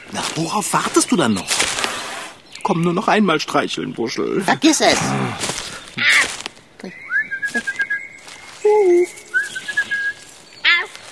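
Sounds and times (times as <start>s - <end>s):
breathy rustling bursts: 0.0s - 2.4s, 5.0s - 6.7s, 7.4s - 11.1s
speech: 0.1s - 1.6s, 2.7s - 7.7s
person whistling melodic phrases with slides and trills: 7.1s - 8.0s, 8.6s - 10.3s.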